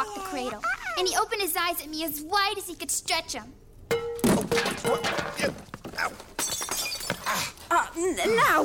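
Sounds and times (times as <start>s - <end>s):
speech: 0.3s - 3.6s, 8.0s - 8.6s
ceramic water pitcher smashing: 3.9s - 7.0s.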